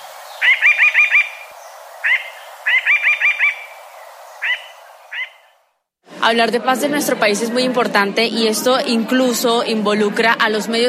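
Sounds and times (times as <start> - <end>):
Colombian mountain jay trilling: 0.2 - 5.7
speech: 6.3 - 10.8.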